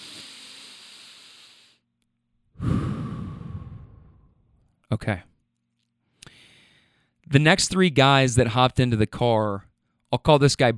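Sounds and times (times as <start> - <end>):
slow deep breath: 0.0 - 1.8, 2.5 - 4.6, 6.0 - 7.2
speech: 4.9 - 5.3, 7.3 - 10.7.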